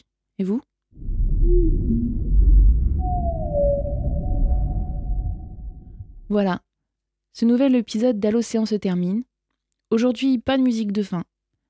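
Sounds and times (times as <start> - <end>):
speech: 0.4 - 2.3, 6.3 - 6.7, 7.4 - 9.3, 9.9 - 11.3
deep underwater rumble: 1.0 - 6.4
whale song: 1.0 - 6.4.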